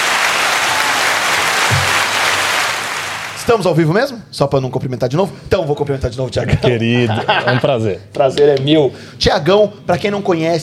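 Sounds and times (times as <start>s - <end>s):
audience applause: 0.0s - 3.5s
speech: 3.5s - 10.6s
laughter: 7.0s - 7.9s.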